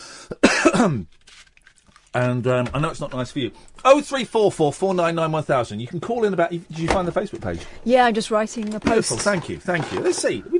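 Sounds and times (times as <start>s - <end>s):
harsh throat clearing: 0.3s - 1.1s
person coughing: 0.3s - 1.1s
speech: 0.3s - 1.2s, 2.1s - 10.5s.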